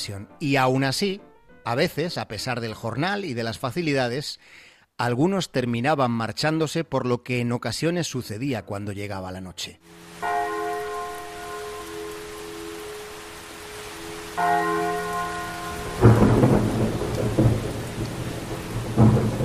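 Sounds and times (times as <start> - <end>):
speech: 0.0 - 10.3, 14.4 - 14.9
steady rain: 9.9 - 19.4
church bell tolling at night: 10.2 - 17.7
low rumble of thunder: 15.1 - 19.4.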